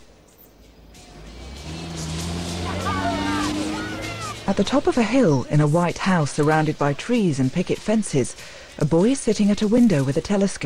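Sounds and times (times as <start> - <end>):
four-wheel-drive rally vehicle engines roaring along a beach: 0.0 - 7.0
speech: 4.5 - 10.6.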